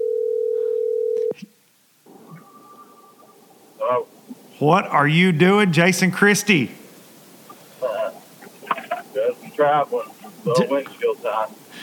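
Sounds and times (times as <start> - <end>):
telephone dial tone: 0.0 - 1.4
speech: 3.9 - 6.8, 9.6 - 11.6
laughter: 7.5 - 11.8.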